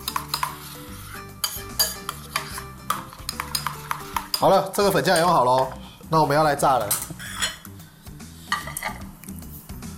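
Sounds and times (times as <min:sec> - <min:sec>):
metal utensil scraping and clinking against a wok: 0:00.0 - 0:05.9, 0:06.8 - 0:07.7, 0:08.5 - 0:09.1
speech: 0:04.4 - 0:07.0.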